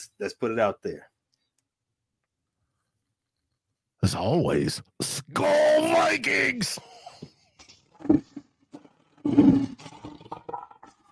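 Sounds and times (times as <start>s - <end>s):
speech: 0.0s - 1.2s, 4.0s - 7.0s, 8.0s - 8.3s, 9.2s - 10.0s
lion growling: 7.9s - 11.0s.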